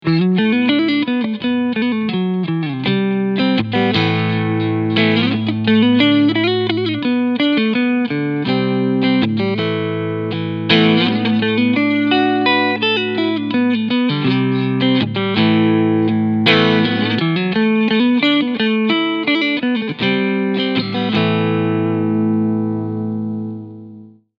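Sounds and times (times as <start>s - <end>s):
clean electric guitar on single-coil front pickup: 0.0s - 24.3s.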